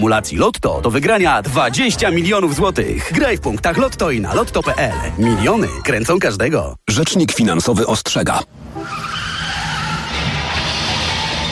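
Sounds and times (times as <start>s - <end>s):
speech: 0.0s - 9.2s
car tyres skidding: 8.6s - 11.5s.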